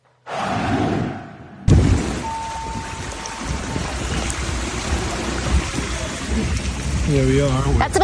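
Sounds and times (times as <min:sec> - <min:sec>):
rushing floodwater in city streets in London, England: 0:01.7 - 0:08.0
torrential rain on city streets in London, England: 0:01.7 - 0:08.0
speech: 0:07.1 - 0:08.0.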